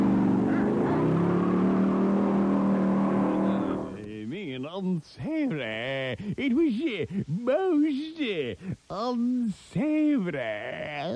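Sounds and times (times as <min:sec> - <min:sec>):
car engine accelerating hard: 0:00.0 - 0:04.1
speech: 0:04.8 - 0:11.1.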